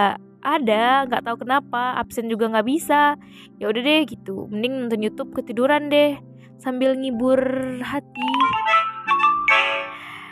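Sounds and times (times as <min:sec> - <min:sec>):
speech: 0:00.0 - 0:08.6
phone messaging app group notification chime: 0:08.2 - 0:10.0.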